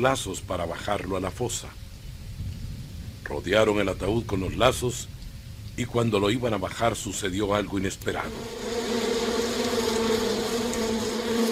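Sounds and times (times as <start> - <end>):
speech: 0.0 - 1.8, 3.3 - 5.1, 5.8 - 8.7
swarm of bees buzzing: 8.2 - 11.4.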